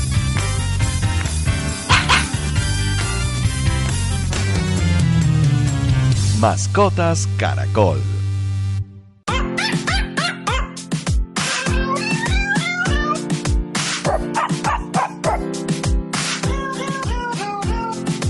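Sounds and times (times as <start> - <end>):
steady rhythmic backing: 0.0 - 7.5, 9.3 - 18.2
cats meowing and barks pitched into a bouncy Christmas carol: 1.8 - 2.5, 9.3 - 15.6, 16.4 - 18.2
laughter: 1.8 - 2.8
speech: 6.4 - 8.1.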